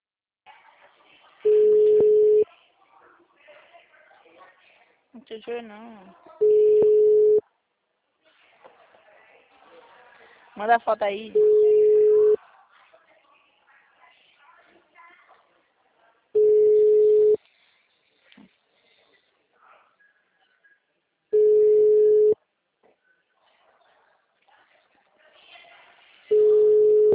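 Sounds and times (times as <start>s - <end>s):
faint low noise: 0.4s - 27.1s
telephone ringback tones before reaching voicemail: 1.5s - 2.4s, 6.4s - 7.4s, 16.4s - 17.4s, 21.4s - 22.4s, 26.3s - 27.1s
speech: 5.2s - 6.4s, 10.6s - 11.6s.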